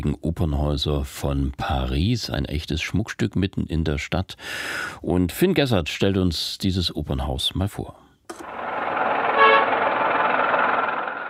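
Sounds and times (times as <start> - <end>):
speech: 0.0 - 8.6
dense roar of busy city traffic: 8.3 - 11.2
short car horn honk: 9.3 - 10.0.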